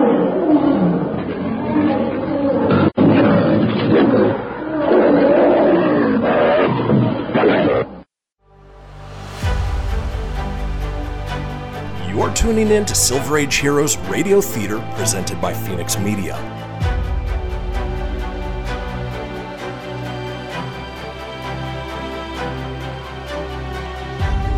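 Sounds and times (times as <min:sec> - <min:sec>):
lion roaring and snarling: 0:00.0 - 0:08.0
music: 0:08.4 - 0:24.5
speech: 0:12.5 - 0:16.6.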